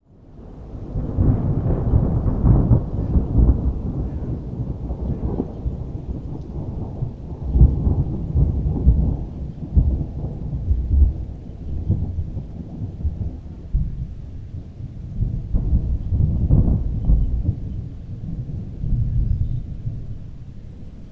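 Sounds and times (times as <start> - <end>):
thunderstorm: 0.1 - 21.0.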